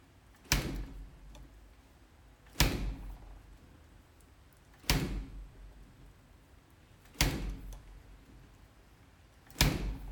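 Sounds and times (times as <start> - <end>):
fridge door impact: 0.5 - 1.0, 2.5 - 3.2, 4.8 - 5.4, 7.1 - 7.8, 9.5 - 10.1.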